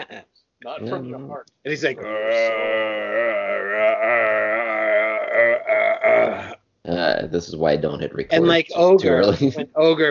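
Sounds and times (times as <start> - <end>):
speech: 0.7 - 4.2, 6.9 - 10.0
long deep burp: 2.0 - 6.6.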